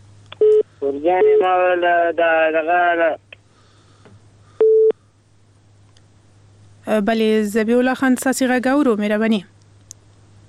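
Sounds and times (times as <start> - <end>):
faint low hum: 0.0 - 10.4
speech: 0.8 - 3.2, 6.9 - 9.5
telephone busy tone after call disconnects: 4.6 - 4.9.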